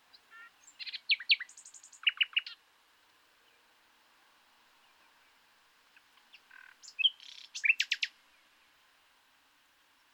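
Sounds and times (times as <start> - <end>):
common nightingale Luscinia megarhynchos singing: 0.0 - 2.6, 6.0 - 8.4.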